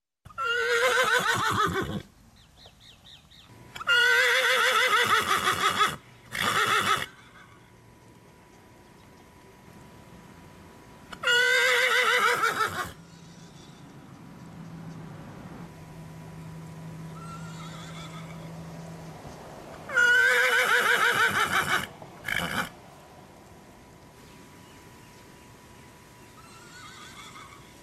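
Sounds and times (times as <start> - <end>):
horses neighing: 0.4 - 2.1, 3.8 - 7.7, 11.1 - 14.0, 17.2 - 18.5, 19.9 - 22.8, 26.4 - 27.8.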